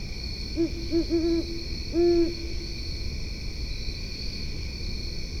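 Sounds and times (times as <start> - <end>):
insects trilling: 0.2 - 5.2
great horned owl hooting in West Grove Dog Park, Virginia: 0.6 - 2.7.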